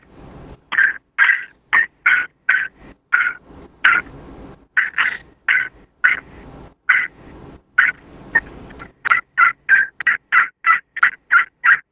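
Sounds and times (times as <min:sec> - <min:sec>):
crystal friction turkey call making cutting sounds: 0:00.7 - 0:04.1, 0:04.8 - 0:06.3, 0:06.9 - 0:07.1, 0:07.8 - 0:11.9.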